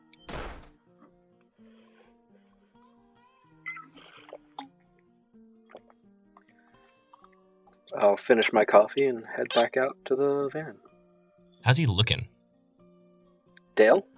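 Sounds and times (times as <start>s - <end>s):
distant back door opening and closing: 0.2s - 0.7s
speech: 7.9s - 10.8s, 11.6s - 12.3s, 13.8s - 14.1s.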